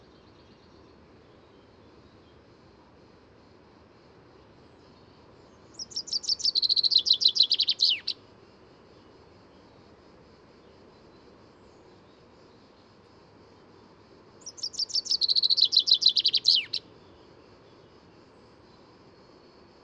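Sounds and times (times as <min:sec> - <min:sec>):
common chaffinch Fringilla coelebs singing: 0:05.6 - 0:08.2, 0:14.4 - 0:16.9.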